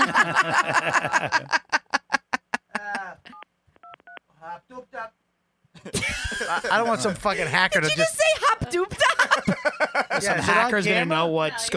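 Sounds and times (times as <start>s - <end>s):
burst of laughter: 0.0s - 3.2s, 5.8s - 7.0s, 8.9s - 10.4s
speech: 0.3s - 1.6s, 6.5s - 9.0s, 9.8s - 11.7s
electronic phone keypad beeps while dialing: 3.3s - 4.2s.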